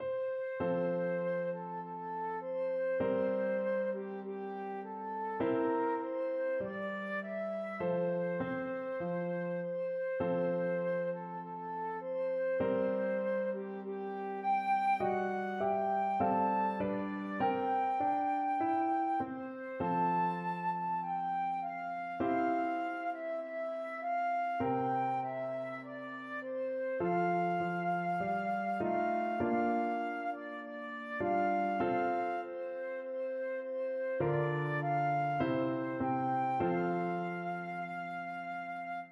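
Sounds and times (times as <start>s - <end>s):
patriotic song played on flute: 0.0s - 39.0s.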